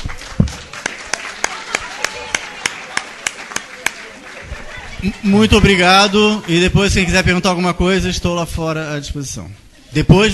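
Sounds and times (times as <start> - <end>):
hand claps for a speaker at a lecture: 0.0 - 4.4
soft murmur at a lecture: 0.2 - 5.2
speech: 5.0 - 10.3.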